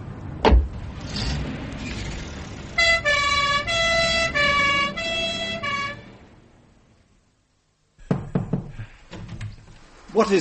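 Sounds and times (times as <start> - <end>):
rumbling vehicle noise: 0.0 - 7.2
loud two-tone ambulance siren: 2.8 - 6.1.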